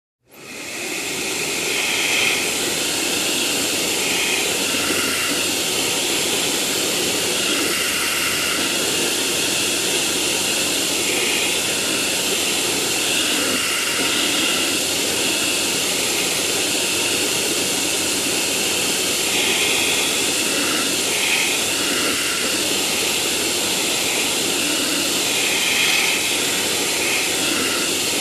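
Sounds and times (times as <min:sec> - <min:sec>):
vacuum cleaner: 0:00.2 - 0:28.1.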